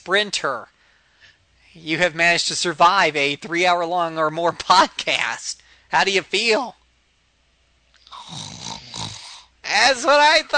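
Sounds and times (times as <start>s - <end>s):
speech: 0.0s - 0.8s, 1.8s - 6.8s, 9.7s - 10.5s
person imitating a snore: 8.0s - 9.6s.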